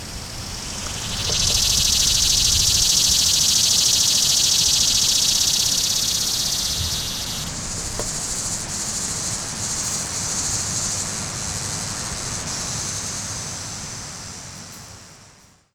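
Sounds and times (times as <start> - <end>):
cicada: 0.0 - 15.7.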